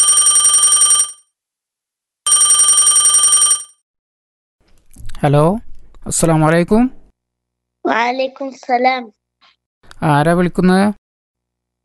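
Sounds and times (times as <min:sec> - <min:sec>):
telephone ringing with an incoming call: 0:00.0 - 0:01.3, 0:02.3 - 0:03.8
speech: 0:05.2 - 0:07.0, 0:07.9 - 0:09.2, 0:10.0 - 0:11.0.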